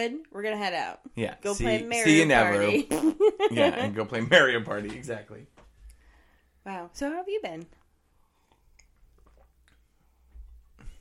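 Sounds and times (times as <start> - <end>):
speech: 0.0 - 5.6, 6.6 - 7.8
person taking a big sip of water: 8.1 - 10.9
swallow: 8.3 - 10.0.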